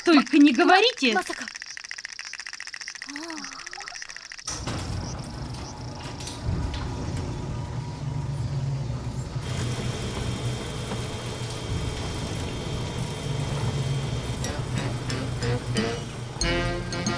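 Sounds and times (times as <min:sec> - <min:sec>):
speech: 0:00.1 - 0:01.5
car engine starting and rumbling while driving: 0:04.5 - 0:17.0.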